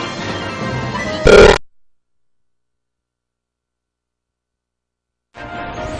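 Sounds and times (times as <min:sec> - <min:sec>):
sound glitch: 0:01.3 - 0:01.6.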